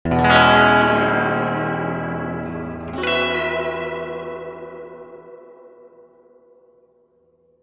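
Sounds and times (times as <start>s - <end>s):
long tremolo chords through a three-spring reverb tank: 0.1s - 6.8s.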